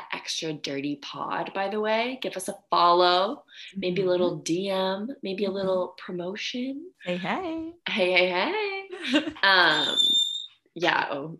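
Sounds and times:
speech: 0.3s - 10.0s, 10.8s - 11.3s
door creaking open: 9.6s - 10.5s.

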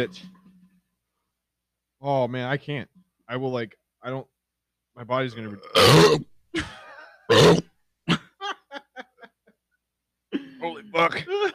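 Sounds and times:
speech: 0.0s - 0.4s, 2.0s - 4.3s, 5.0s - 7.7s, 10.8s - 11.5s
loud deep burp: 5.5s - 6.3s, 7.3s - 8.2s
laughter: 8.3s - 9.6s, 10.4s - 11.5s.

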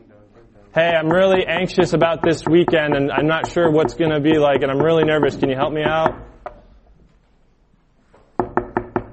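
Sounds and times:
speech: 0.5s - 6.3s
firm knocking on a door: 0.8s - 6.3s, 8.4s - 9.1s.

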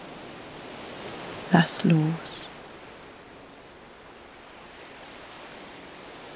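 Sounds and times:
ocean waves breaking on shore: 0.0s - 6.3s
speech: 1.5s - 2.5s.

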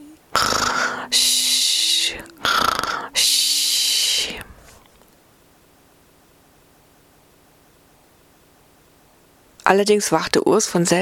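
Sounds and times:
loud snoring: 0.3s - 3.2s
speech: 1.1s - 1.4s, 9.7s - 11.0s.

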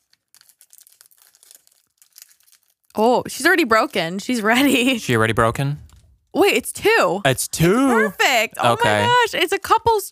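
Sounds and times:
candy bar wrapper crinkling and tearing: 0.0s - 4.0s
speech: 3.0s - 10.1s
laughter: 7.3s - 9.4s.

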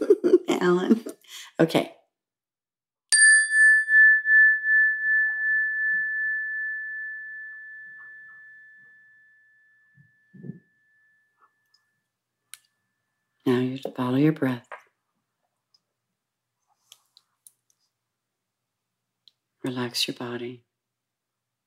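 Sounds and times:
laughter: 0.0s - 0.5s
speech: 0.6s - 1.0s, 1.6s - 2.0s, 13.5s - 14.8s, 19.6s - 20.7s
meditation chime ringing: 3.1s - 12.1s.

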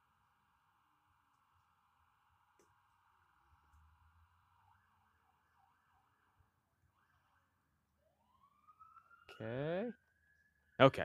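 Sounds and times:
police car siren passing by: 4.1s - 10.8s
speech: 9.4s - 10.0s, 10.8s - 11.0s.

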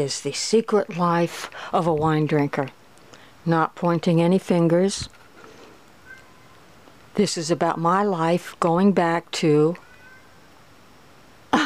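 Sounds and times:
speech: 0.0s - 2.8s, 3.4s - 5.2s, 7.2s - 9.8s
cat meowing: 6.0s - 6.6s, 9.8s - 10.4s.

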